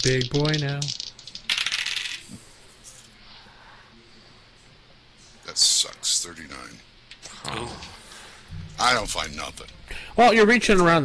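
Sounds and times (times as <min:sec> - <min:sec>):
speech: 0:00.0 - 0:01.0, 0:05.6 - 0:08.0, 0:08.8 - 0:11.0
large dice clattering across a hard tabletop: 0:00.0 - 0:02.4.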